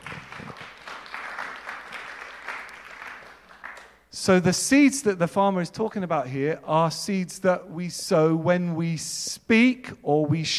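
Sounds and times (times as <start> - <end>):
room full of people applauding: 0.0 - 4.0
speech: 4.2 - 10.5.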